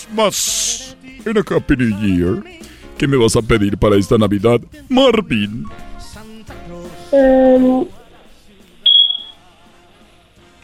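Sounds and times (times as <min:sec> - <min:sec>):
speech: 0:00.1 - 0:05.9, 0:07.1 - 0:08.0
smoke alarm low-battery chirp: 0:08.8 - 0:09.4.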